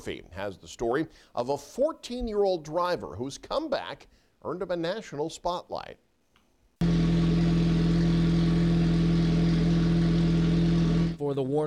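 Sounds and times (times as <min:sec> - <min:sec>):
speech: 0:00.0 - 0:06.0, 0:11.2 - 0:11.6
engine roaring with a steady low drone: 0:06.8 - 0:11.2.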